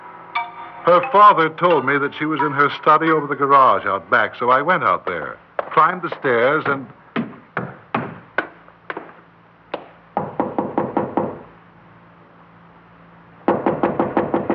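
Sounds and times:
speech: 0.8 - 7.0
knocking on the wooden door of a study above a garage: 10.2 - 11.4, 13.5 - 14.5.

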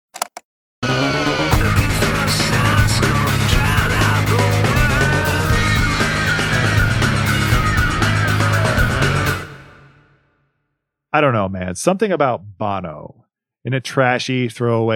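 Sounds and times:
distorted industrial rock with grinding noisy guitars and heavy pulsing low end: 1.5 - 9.6
speech: 11.1 - 14.9.

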